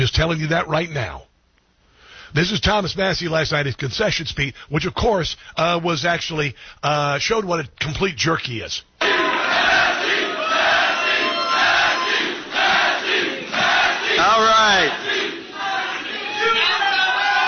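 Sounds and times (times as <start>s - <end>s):
speech: 0.0s - 1.3s, 2.3s - 8.9s
large loud crowd yelling and chanting: 9.0s - 17.4s.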